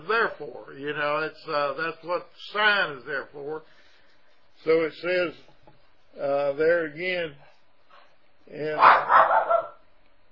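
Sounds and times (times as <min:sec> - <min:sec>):
speech: 0:00.1 - 0:03.8, 0:04.6 - 0:05.5, 0:06.2 - 0:07.5, 0:08.5 - 0:09.4
dog barking: 0:08.8 - 0:09.8.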